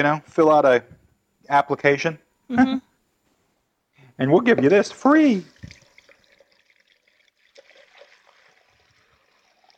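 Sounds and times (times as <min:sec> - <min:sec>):
speech: 0:00.0 - 0:02.9, 0:04.2 - 0:05.8
water poured into a 2- to 2.5-quart casserole dish of beans: 0:05.2 - 0:09.7.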